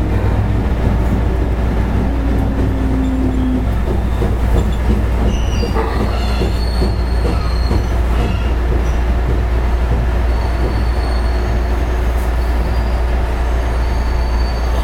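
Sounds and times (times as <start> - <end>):
JR West 221 series electric train interior running rumble: 0.0 - 14.8
faint tones: 1.3 - 5.0
brief high wheel squeals of an electric train: 2.0 - 9.1, 10.3 - 14.8.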